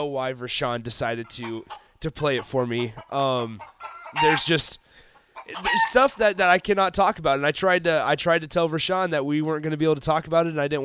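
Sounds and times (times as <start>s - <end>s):
speech: 0.0s - 4.8s, 5.5s - 10.8s
chicken clucking played from a tape: 1.0s - 6.6s.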